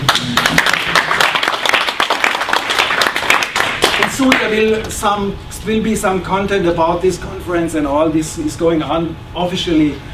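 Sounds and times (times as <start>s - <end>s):
conference audience applause: 0.0s - 4.1s
speech: 4.2s - 10.1s.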